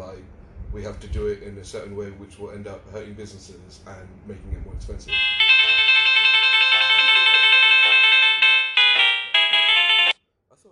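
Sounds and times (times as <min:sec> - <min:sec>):
speech: 0:00.7 - 0:05.5
phone ringtone with bright repeating electronic melody: 0:05.1 - 0:10.2.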